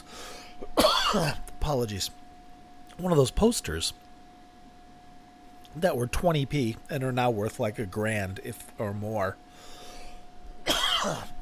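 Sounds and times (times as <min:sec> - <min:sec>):
person coughing: 0:00.7 - 0:01.5, 0:10.6 - 0:11.3
speech: 0:01.1 - 0:02.2, 0:03.0 - 0:04.0, 0:05.8 - 0:09.4, 0:11.0 - 0:11.3.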